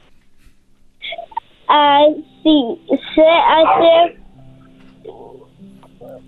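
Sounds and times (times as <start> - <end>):
faint steady hum: 0.0 - 6.2
speech: 1.7 - 4.2
young child mimicking a dog's bark: 2.9 - 4.1.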